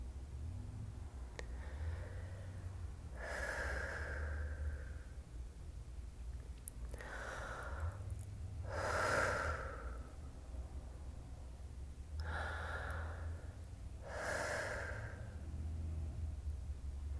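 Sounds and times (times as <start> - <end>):
faint low hum: 0.0 - 17.1
person taking slow deep breaths to let out tension: 1.2 - 5.3, 6.9 - 11.6, 12.2 - 16.4.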